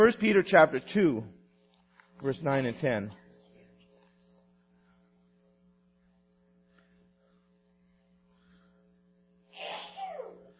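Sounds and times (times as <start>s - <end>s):
speech: 0.0s - 1.4s, 2.2s - 3.2s
sneeze: 9.5s - 10.5s.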